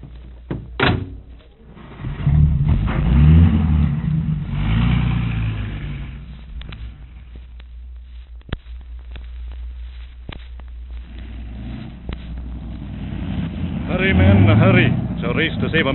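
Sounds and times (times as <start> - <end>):
car door shutting: 0.5 - 3.1
car engine accelerating and driving off: 1.2 - 8.2, 10.8 - 15.9
speech: 14.5 - 15.9.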